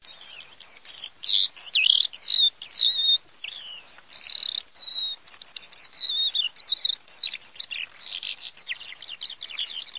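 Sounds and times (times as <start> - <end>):
skylarks singing: 0.0 - 9.9.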